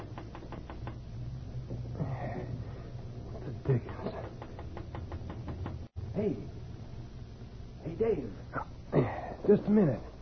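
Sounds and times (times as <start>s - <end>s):
soft tapping on an open window at night: 0.0s - 1.1s, 3.6s - 5.9s
low steady hum: 0.0s - 10.1s
speech: 6.2s - 6.6s, 8.0s - 8.7s, 9.5s - 10.1s.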